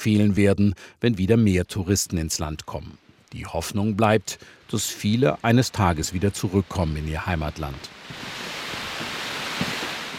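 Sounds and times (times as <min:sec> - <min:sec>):
speech: 0:00.0 - 0:08.4
waterfall below a monastery in Bhutan: 0:07.5 - 0:10.1.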